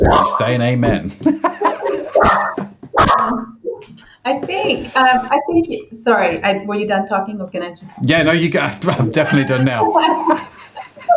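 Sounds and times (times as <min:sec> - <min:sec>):
speech: 0:00.4 - 0:01.5, 0:04.2 - 0:11.1
laughter: 0:00.9 - 0:03.4, 0:08.1 - 0:11.1
dogs barking: 0:01.6 - 0:03.6, 0:09.0 - 0:10.5.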